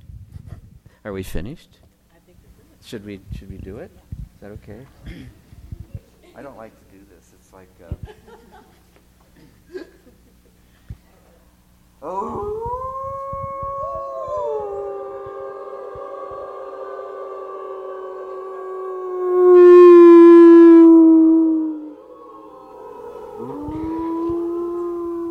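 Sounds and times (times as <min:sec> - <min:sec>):
speech: 0:01.0 - 0:01.9, 0:02.8 - 0:05.4, 0:06.4 - 0:06.8, 0:07.5 - 0:08.8, 0:12.0 - 0:12.8
laughter: 0:07.8 - 0:10.6
wolf howling: 0:12.0 - 0:25.2.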